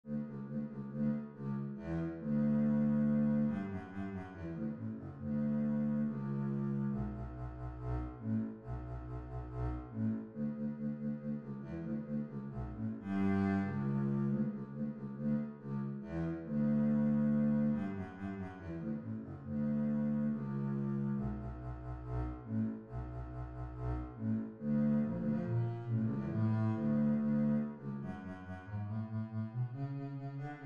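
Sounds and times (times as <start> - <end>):
bass: 0.0 - 30.6.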